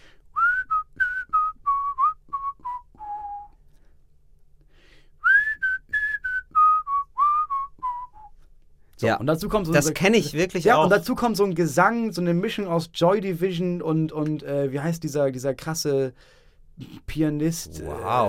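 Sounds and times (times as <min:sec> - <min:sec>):
person whistling a melody imitating a synthesizer line: 0:00.3 - 0:03.6, 0:05.2 - 0:08.4
speech: 0:09.0 - 0:18.2.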